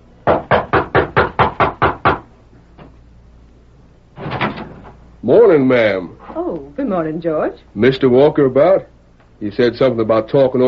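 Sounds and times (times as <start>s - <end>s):
knocking on a wooden back door: 0.2s - 2.3s
speech: 5.3s - 10.6s.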